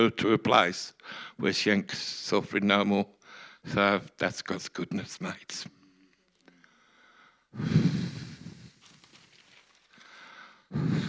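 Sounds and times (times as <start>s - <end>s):
speech: 0.0s - 5.8s, 7.6s - 8.0s, 10.7s - 11.0s
heavy breathing into the microphone: 6.5s - 9.0s, 9.9s - 11.0s.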